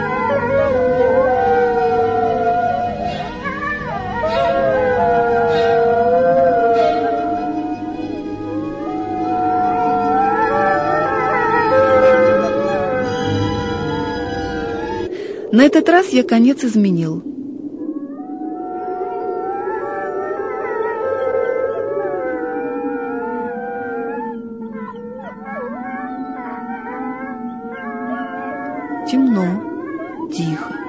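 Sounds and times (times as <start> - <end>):
chorus of wolves howling in the distance: 0.0 - 15.1, 17.3 - 30.8
speech: 15.6 - 17.3.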